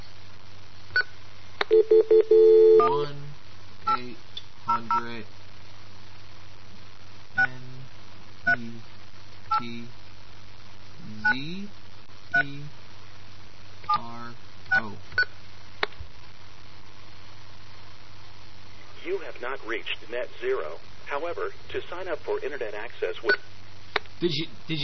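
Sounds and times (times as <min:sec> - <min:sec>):
low steady hum: 0:00.0 - 0:24.8
telephone touch tones of a number being dialed: 0:01.7 - 0:02.9
speech: 0:19.5 - 0:23.5, 0:24.2 - 0:24.8.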